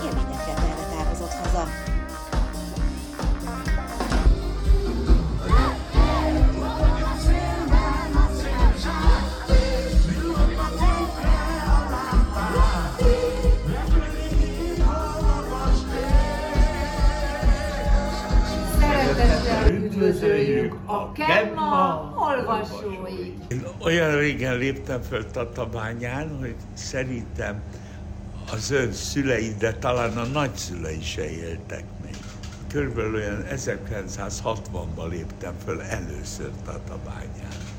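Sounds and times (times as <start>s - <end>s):
closing act's live music with a steady beat: 0.0s - 19.7s
large outdoor festival crowd of several thousand singing along: 3.7s - 20.9s
festival crowd shouts and whoops: 4.7s - 12.9s
speech: 22.4s - 27.8s, 28.5s - 32.0s, 32.7s - 37.7s.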